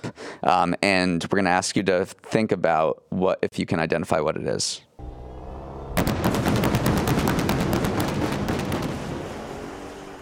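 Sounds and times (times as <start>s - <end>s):
speech: 0.0s - 5.2s
Dodge Challenger SRT Demon 170 gas-powered muscle car engine roaring: 5.0s - 10.2s.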